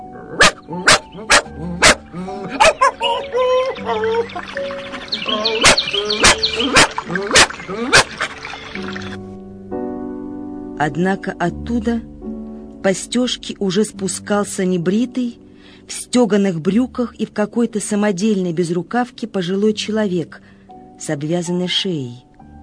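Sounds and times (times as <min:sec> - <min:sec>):
small dog barking excitedly: 0:00.3 - 0:02.0, 0:02.6 - 0:03.2, 0:05.4 - 0:08.3
small dog whining: 0:00.3 - 0:04.3, 0:05.4 - 0:08.3
speech: 0:03.9 - 0:07.9, 0:10.8 - 0:12.1, 0:12.8 - 0:22.2.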